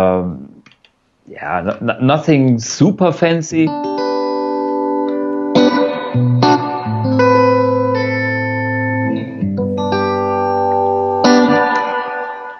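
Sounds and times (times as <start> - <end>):
speech: 0.0 - 0.5, 1.3 - 4.0
guitar chords through the built-in spring reverb of a pedal amp: 3.7 - 12.5.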